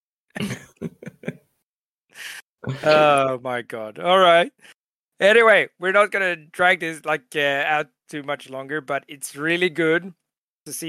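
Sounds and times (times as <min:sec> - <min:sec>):
person coughing: 0:00.4 - 0:00.9
speech: 0:02.7 - 0:10.8.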